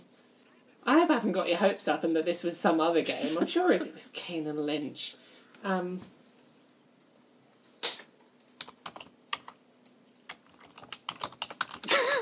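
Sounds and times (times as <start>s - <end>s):
quiet electrical hum: 0.0s - 12.1s
speech: 1.2s - 6.2s
clicky mechanical keyboard typing: 7.6s - 12.1s.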